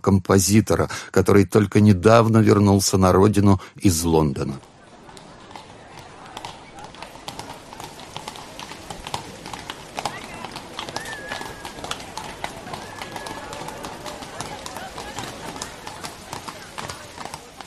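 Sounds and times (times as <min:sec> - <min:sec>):
speech: 0:00.0 - 0:04.7
horse-drawn carriage hooves clip-clopping on a railway station square: 0:04.4 - 0:17.6.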